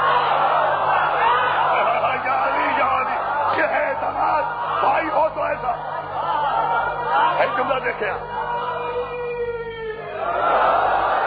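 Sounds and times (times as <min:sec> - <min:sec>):
large crowd chanting a religious slogan in response: 0:00.0 - 0:08.8, 0:10.1 - 0:11.2
laughter: 0:00.0 - 0:08.9, 0:09.8 - 0:11.2.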